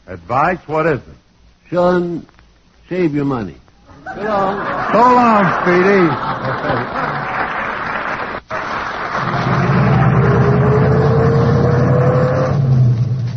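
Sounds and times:
speech: 0:00.1 - 0:07.2
laughter: 0:03.9 - 0:09.4
car engine starting, revving and accelerating away: 0:09.1 - 0:13.3.

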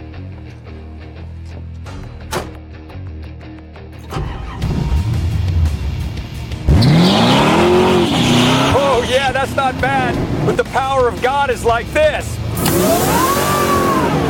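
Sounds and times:
car engine accelerating hard with a nitrous boost: 0:04.1 - 0:10.8, 0:12.4 - 0:14.2
speech: 0:09.4 - 0:13.6.

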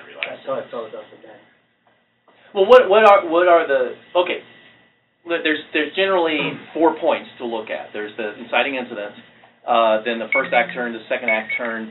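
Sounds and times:
speech: 0:00.5 - 0:01.6, 0:02.5 - 0:04.5, 0:05.2 - 0:11.8
phone alarm beeping: 0:10.3 - 0:11.7.

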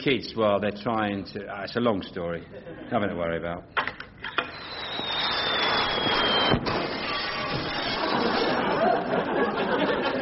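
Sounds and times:
speech: 0:00.0 - 0:03.8
firework rocket whistling and cracking: 0:04.3 - 0:08.6
laughter: 0:07.8 - 0:10.2.

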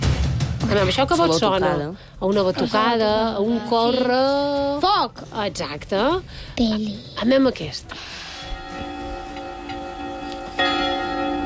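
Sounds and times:
speech: 0:00.7 - 0:08.2
church bells ringing as a sound effect: 0:08.2 - 0:11.4.

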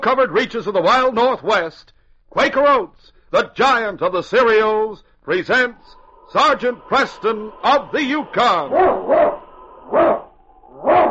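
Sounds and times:
speech: 0:00.0 - 0:10.2
husky lead sled dog barking: 0:08.7 - 0:11.1.

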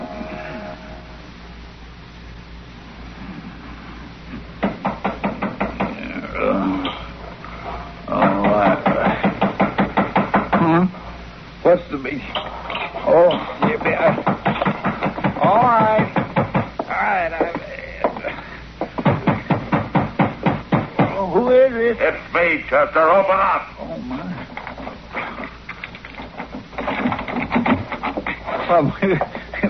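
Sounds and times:
knocking on a locked door: 0:04.6 - 0:06.0, 0:08.2 - 0:10.8, 0:13.6 - 0:18.2, 0:18.8 - 0:21.2
voices: 0:05.8 - 0:09.4, 0:10.5 - 0:19.0, 0:21.0 - 0:29.6.

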